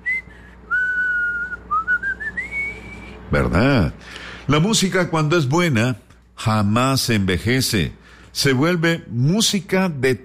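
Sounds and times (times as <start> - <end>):
person whistling a short melody: 0.0 - 3.2
faint steady hum: 0.0 - 10.2
speech: 3.3 - 10.2.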